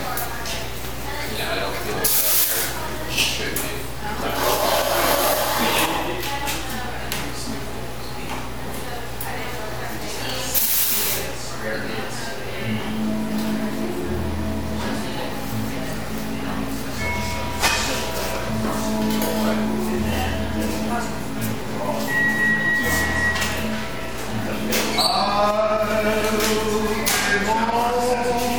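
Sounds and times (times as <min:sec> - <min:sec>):
overlapping chatter in a busy coffee shop: 0:00.0 - 0:28.5
brief tonal beeps: 0:22.1 - 0:23.8.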